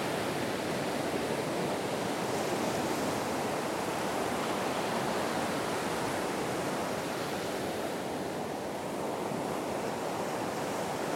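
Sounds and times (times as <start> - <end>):
waves at a beach: 0.0 - 11.1.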